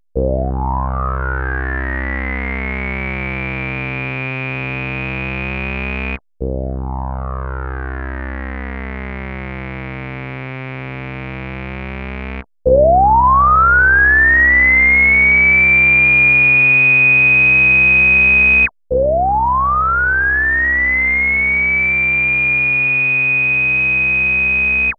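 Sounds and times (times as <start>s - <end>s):
synthesizer sound through microwave plugin filter: 0.2s - 24.9s.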